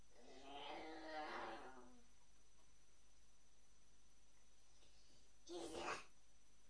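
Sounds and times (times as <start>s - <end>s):
young child growling an imitation of an angry lion's roar: 0.1s - 2.0s, 5.5s - 6.1s.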